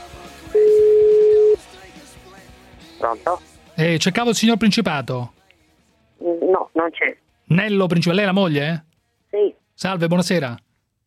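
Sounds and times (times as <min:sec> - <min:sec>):
telephone tone while a number is dialled: 0:00.6 - 0:01.6
speech: 0:03.0 - 0:05.4, 0:06.4 - 0:10.6.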